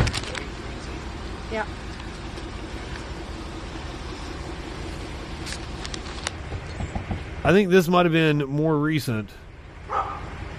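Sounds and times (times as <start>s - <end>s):
speech: 1.5s - 1.9s, 7.4s - 9.4s
dog barking while wading through swampland in Florida: 9.9s - 10.3s.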